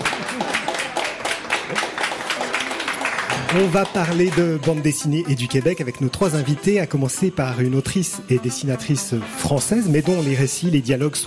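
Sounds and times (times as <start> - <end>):
live comics festival audience applauding in Lausanne: 0.0 - 5.4
speech: 3.5 - 11.2.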